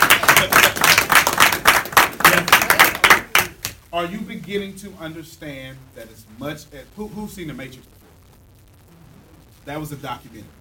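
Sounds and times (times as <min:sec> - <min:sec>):
audience clapping: 0:00.0 - 0:03.8
speech: 0:04.0 - 0:08.0, 0:09.6 - 0:10.6.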